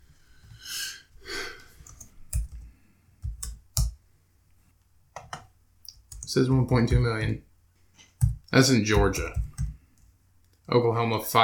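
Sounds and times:
loud computer keyboard typing: 1.8s - 4.0s, 5.2s - 7.4s, 8.1s - 10.1s
speech: 6.3s - 7.5s, 8.6s - 9.5s, 10.7s - 11.4s.

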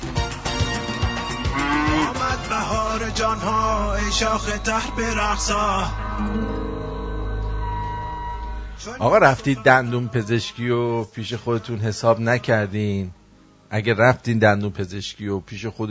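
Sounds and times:
cow mooing: 1.1s - 4.6s
low quieter rumble: 1.7s - 10.4s
speech: 2.5s - 6.6s, 8.8s - 15.8s.

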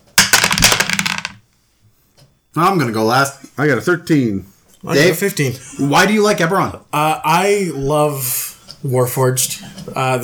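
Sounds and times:
dice clattering across a hard table: 0.2s - 1.4s
speech: 2.6s - 10.2s.

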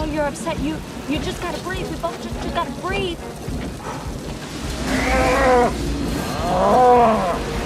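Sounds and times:
speech: 0.2s - 5.9s, 6.4s - 7.2s
cow mooing: 4.8s - 7.4s.

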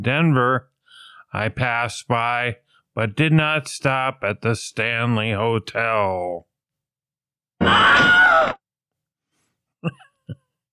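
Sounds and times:
speech: 0.0s - 0.7s, 1.3s - 6.5s, 7.6s - 8.2s, 9.8s - 10.0s
person letting out an imitation scream: 7.6s - 8.6s.

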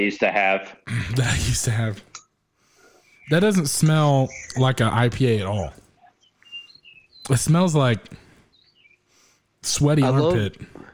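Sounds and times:
speech: 0.0s - 2.1s, 3.3s - 5.8s, 7.2s - 8.2s, 9.6s - 10.9s
faint high bird chirps: 2.8s - 10.2s.

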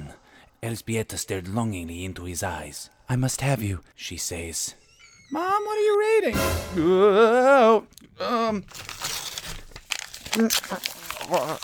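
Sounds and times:
speech: 0.6s - 9.0s, 10.3s - 11.6s
paper crumpling: 7.9s - 11.6s.

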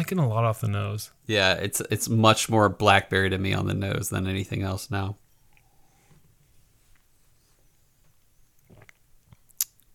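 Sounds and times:
speech: 0.0s - 5.2s
lip smack: 8.6s - 9.9s
person sipping whiskey with a little water added: 8.6s - 9.9s.

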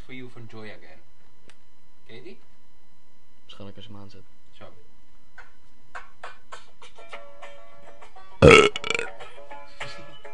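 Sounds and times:
speech: 0.3s - 1.1s, 2.1s - 2.6s, 3.5s - 5.5s, 8.4s - 8.8s
loud burp with gurgling pulses: 8.4s - 9.1s.

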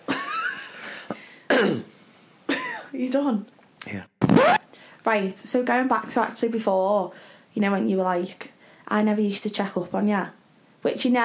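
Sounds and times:
person coughing: 1.5s - 1.9s, 2.5s - 2.9s
speech: 3.0s - 4.1s, 5.0s - 11.2s.

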